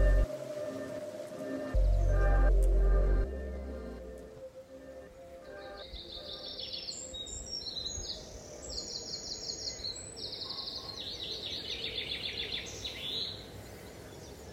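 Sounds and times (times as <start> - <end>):
low booming noise: 0.0 - 0.3, 1.8 - 4.4
steady outdoor rumble: 0.0 - 0.4, 1.7 - 4.5
birds chirping outdoors: 0.0 - 14.5.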